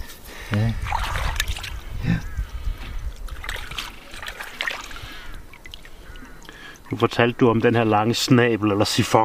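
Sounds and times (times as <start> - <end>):
sand clams swished and rinsed in shallow water: 0.8 - 2.0, 3.2 - 8.0
speech: 7.0 - 9.2.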